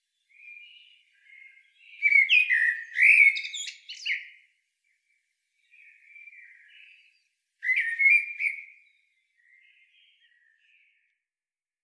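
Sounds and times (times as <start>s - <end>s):
common blackbird chirping and squeaking: 0.3s - 4.4s, 5.7s - 9.0s.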